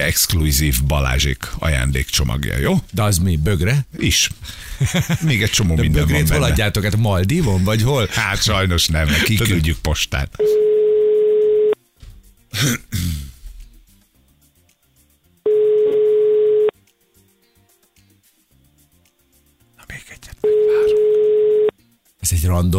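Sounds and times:
speech: 0.0 - 10.8, 12.5 - 13.3, 22.2 - 22.7
laughter: 4.5 - 9.6
telephone ringback tones over a line: 10.4 - 11.8, 15.5 - 16.7, 20.4 - 21.8.

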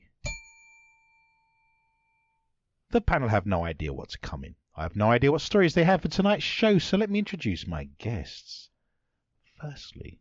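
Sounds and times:
bell ding: 0.2 - 2.5
speech: 2.9 - 8.7, 9.6 - 10.2.

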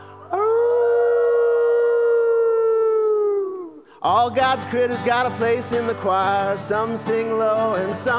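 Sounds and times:
coyote howling: 0.3 - 3.8
speech: 4.1 - 8.1.

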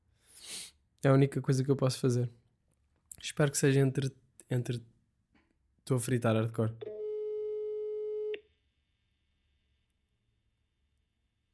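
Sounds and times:
speech: 1.0 - 2.4, 3.4 - 5.0, 5.9 - 6.9
telephone ringback tone while placing a call: 6.8 - 8.3.

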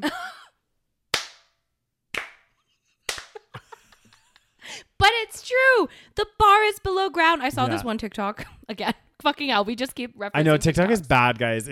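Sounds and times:
sharp hand claps: 1.1 - 3.6
speech: 5.5 - 11.6.

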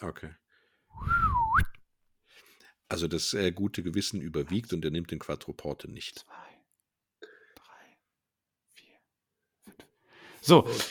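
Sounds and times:
speech: 0.0 - 0.4, 2.9 - 6.5, 10.4 - 10.8
soft human whistle: 1.0 - 1.8.

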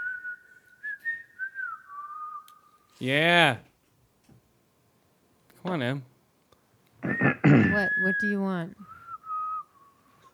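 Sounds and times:
person whistling: 0.0 - 2.9, 7.0 - 10.1
speech: 3.0 - 3.7, 5.7 - 6.1, 7.1 - 8.9.

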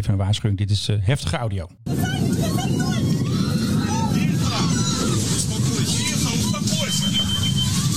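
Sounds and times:
speech: 0.0 - 3.1
constant roar: 1.8 - 7.9
many people screaming aboard an aircraft during a fire: 1.9 - 7.9
many people shouting frantically aboard an aircraft during a fire: 1.9 - 7.9.

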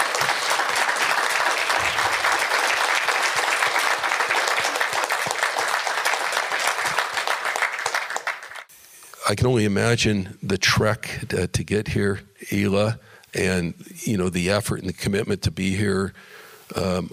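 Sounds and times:
sustained applause from a sizable audience in a room: 0.0 - 8.7
speech: 9.3 - 17.1.

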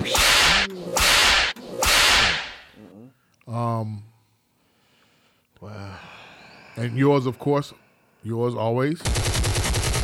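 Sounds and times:
whip lash sound effect: 0.0 - 2.7
speech: 3.5 - 4.1, 6.8 - 9.4.

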